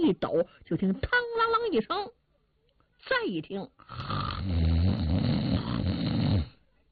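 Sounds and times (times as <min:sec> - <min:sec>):
speech: 0:00.0 - 0:02.2, 0:03.0 - 0:05.2
voice imitating a sleeper's snoring: 0:03.9 - 0:06.6.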